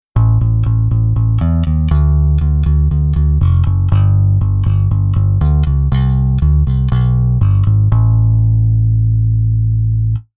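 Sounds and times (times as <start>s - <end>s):
bass interval: 0.1s - 10.3s.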